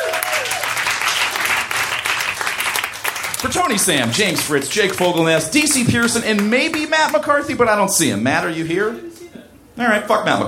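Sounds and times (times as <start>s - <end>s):
crowd applauding: 0.0s - 7.2s
speech: 3.4s - 9.1s, 9.8s - 10.4s.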